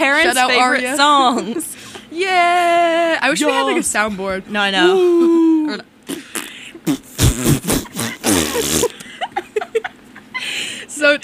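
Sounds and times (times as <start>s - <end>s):
people laughing: 0.0s - 1.8s, 3.2s - 4.2s, 7.6s - 10.5s
speech: 0.0s - 5.9s, 6.9s - 7.6s
voices reacting: 0.0s - 6.6s
loud sputtering fart: 6.0s - 9.0s.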